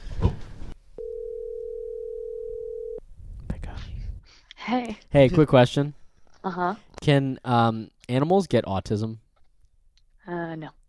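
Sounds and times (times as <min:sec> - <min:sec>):
telephone dial tone of outgoing call: 0:01.0 - 0:03.0
speech: 0:04.7 - 0:09.2, 0:10.3 - 0:10.8.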